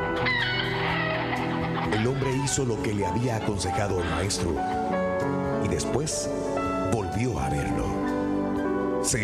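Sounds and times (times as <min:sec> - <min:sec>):
rooster crowing: 0:00.2 - 0:02.1
chickens clucking: 0:00.2 - 0:02.6
speech: 0:02.0 - 0:08.0, 0:09.1 - 0:09.2.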